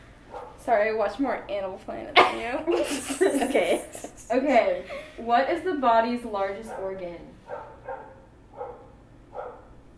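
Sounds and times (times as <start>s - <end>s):
low hum: 0.0s - 9.9s
dog barking: 0.3s - 0.6s, 6.7s - 9.8s
speech: 0.7s - 7.7s.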